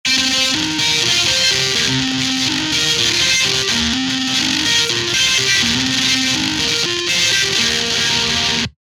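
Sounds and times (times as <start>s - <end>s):
guitar: 0.0s - 8.8s.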